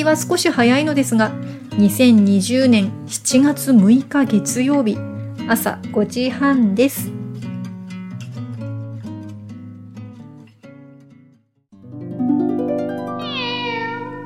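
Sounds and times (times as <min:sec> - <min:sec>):
speech: 0:00.0 - 0:07.2
black cat meowing: 0:13.2 - 0:14.2.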